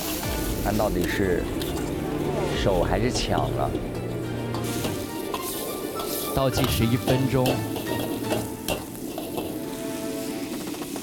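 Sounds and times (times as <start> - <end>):
spatula scraping and clanking against metal wok: 0.0 - 0.5, 4.3 - 11.0
food being stir-fried sizzling in a hot wok: 0.0 - 11.0
speech: 0.6 - 1.7, 2.6 - 4.0, 6.4 - 7.7.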